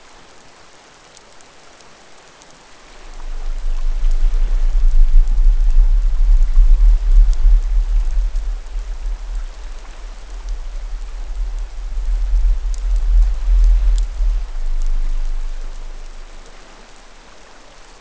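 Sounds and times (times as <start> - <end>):
low frequency splodge: 2.9 - 17.6.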